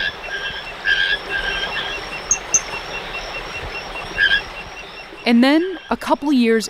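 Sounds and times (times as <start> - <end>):
Ismohyla calypsa tree frogs chirping in an oak cloud forest: 0.0 - 6.6
speech: 5.3 - 6.6.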